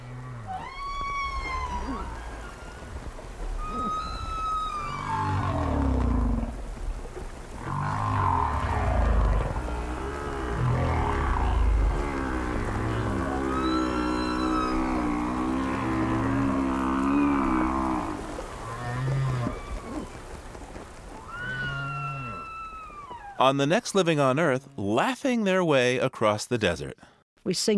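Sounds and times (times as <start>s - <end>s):
humpback whale song with moans, whoops and chirps: 0.0s - 6.5s, 7.6s - 20.2s, 21.2s - 23.4s
speech: 23.4s - 27.7s.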